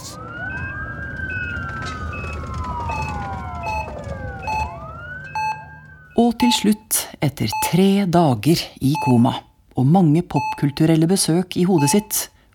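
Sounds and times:
ambulance siren wailing: 0.0s - 6.8s
low traffic rumble: 0.2s - 6.2s
speech: 6.2s - 12.3s
short repeated electronic beeps: 6.4s - 6.7s, 8.9s - 9.4s, 10.4s - 10.8s, 11.7s - 12.2s.

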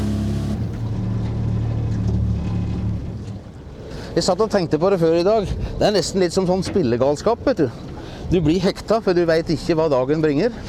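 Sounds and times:
motorboat engine droning on Langesjøen lake on Hardangervidda in Norway: 0.0s - 4.2s
speech: 4.2s - 10.6s.

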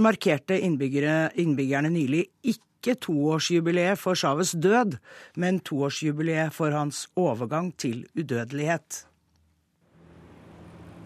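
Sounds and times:
speech: 0.0s - 9.1s
busy road traffic at a roundabout: 9.9s - 11.0s
heavy vehicle bus engine rumbling past at a busy roundabout: 9.9s - 11.0s.

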